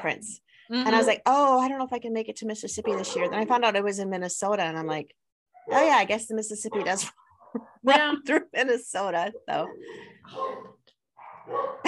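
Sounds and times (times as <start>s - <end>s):
speech: 0.0s - 10.8s, 11.5s - 11.8s
dogs barking: 2.8s - 3.5s, 5.6s - 6.0s, 9.6s - 11.8s.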